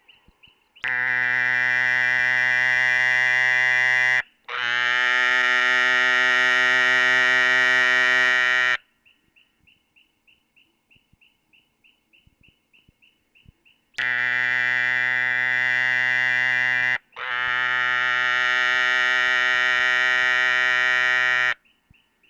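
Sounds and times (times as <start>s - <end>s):
Dermatonotus muelleri advertisement call: 0.8s - 8.8s, 14.0s - 21.6s.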